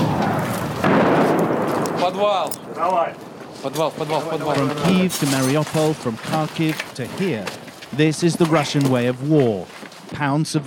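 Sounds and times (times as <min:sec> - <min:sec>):
Russian artillery shells flying and exploding a kilometre away: 0:00.0 - 0:07.8
speech: 0:02.1 - 0:10.6.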